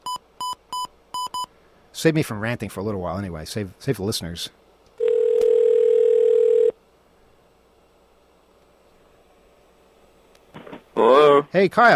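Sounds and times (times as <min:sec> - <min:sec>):
speech: 0:02.0 - 0:04.6, 0:11.5 - 0:11.9
telephone dial tone on a radio studio line: 0:05.0 - 0:06.8.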